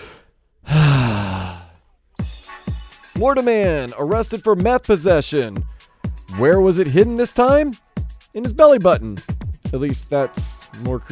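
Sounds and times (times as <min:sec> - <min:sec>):
deep breath released as a long voiced sigh: 0:00.0 - 0:02.0
speech: 0:03.2 - 0:05.7, 0:06.3 - 0:07.8, 0:08.4 - 0:11.1.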